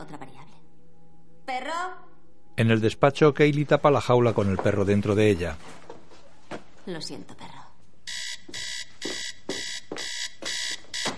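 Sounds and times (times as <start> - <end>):
speech: 0.0 - 0.6, 1.5 - 5.9, 6.9 - 7.5
electronic alarm ringing in bright buzzing beeps: 8.1 - 11.1.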